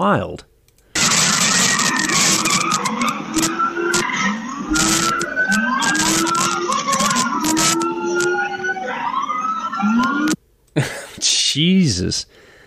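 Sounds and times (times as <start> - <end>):
speech: 0.0 - 0.5, 11.6 - 12.4
minibus tires skidding and squealing while shoving a car sideways: 1.0 - 9.0
minibus engine revving: 1.0 - 10.4
police siren wailing: 1.0 - 10.4.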